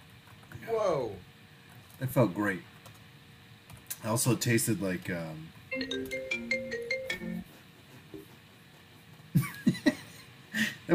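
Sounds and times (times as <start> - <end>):
speech: 0.6 - 1.3, 2.0 - 2.7, 4.0 - 6.6
short melodic phone ringtone: 5.7 - 7.5.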